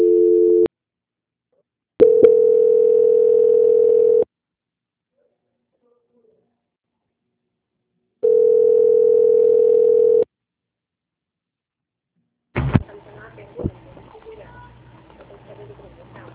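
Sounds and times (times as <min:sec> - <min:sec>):
telephone ringback tones during a call transfer: 0:00.0 - 0:00.7, 0:02.0 - 0:04.3, 0:08.2 - 0:10.3
people talking: 0:12.6 - 0:16.3.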